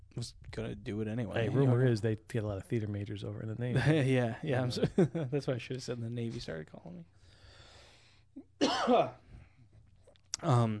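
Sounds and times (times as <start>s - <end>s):
speech: 0.2s - 7.2s, 8.4s - 9.2s, 10.4s - 10.7s
harsh cough: 8.4s - 9.4s.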